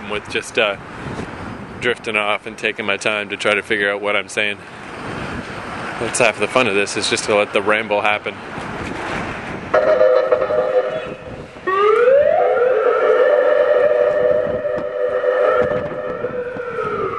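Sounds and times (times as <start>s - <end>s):
speech: 0.1s - 1.1s, 1.8s - 4.8s, 6.0s - 8.6s, 9.8s - 10.3s
ambulance siren late at night: 9.7s - 17.1s.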